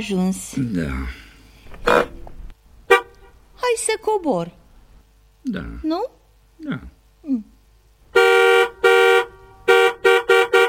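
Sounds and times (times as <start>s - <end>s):
speech: 0.0s - 1.2s, 4.0s - 4.6s, 5.4s - 7.5s
stationary car horn honking: 2.9s - 3.4s, 8.1s - 10.6s.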